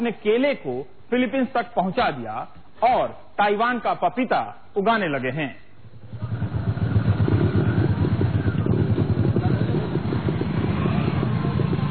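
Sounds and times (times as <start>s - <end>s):
speech: 0.0s - 6.2s
motorcycle engines rumbling in a village near Jhagadia, Gujarat, India: 5.8s - 11.8s.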